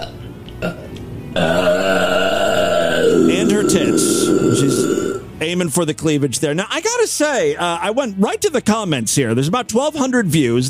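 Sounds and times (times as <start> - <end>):
woman burping: 0.0 - 5.3
speech: 5.4 - 10.6.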